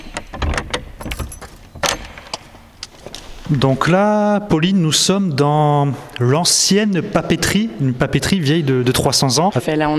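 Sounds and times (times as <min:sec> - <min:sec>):
old door clunk: 0:00.0 - 0:02.7
old door lock clicking and rattling: 0:00.0 - 0:02.9
keys jangling: 0:01.0 - 0:02.5
speech: 0:03.5 - 0:09.9.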